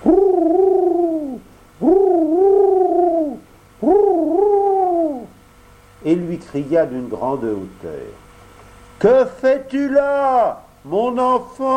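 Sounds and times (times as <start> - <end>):
large pigeon cooing while hovering with spread wings: 0.0 - 5.4
speech: 6.4 - 8.3, 9.0 - 11.7.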